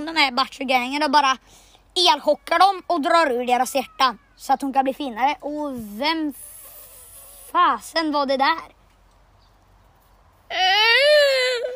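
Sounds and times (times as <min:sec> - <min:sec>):
speech: 0:00.2 - 0:06.5, 0:07.5 - 0:08.8, 0:10.5 - 0:11.7
child crying in a high-pitched wail: 0:03.6 - 0:04.6, 0:10.5 - 0:11.7.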